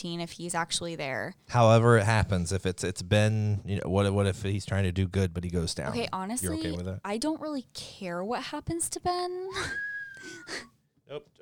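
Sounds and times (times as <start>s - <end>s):
speech: 0.0s - 11.3s
person whistling: 9.5s - 10.7s.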